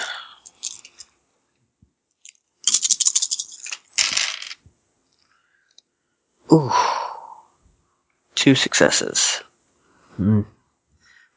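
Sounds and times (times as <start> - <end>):
large handful of dice clattering across a surface during a tabletop roleplaying game: 0.3 - 1.1, 2.2 - 4.6
speech: 6.5 - 6.8, 8.5 - 9.5, 10.2 - 10.6.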